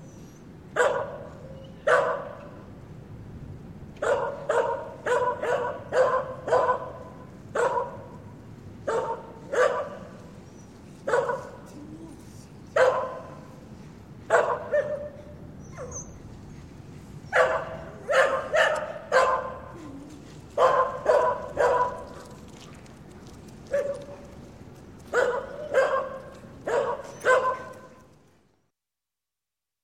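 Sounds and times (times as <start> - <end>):
terrier barking: 0.8 - 2.4, 4.0 - 7.0, 7.6 - 8.2, 8.9 - 10.1, 11.0 - 11.6, 12.8 - 13.4, 14.3 - 16.0, 17.3 - 19.7, 20.6 - 22.2, 23.7 - 24.2, 25.1 - 28.0.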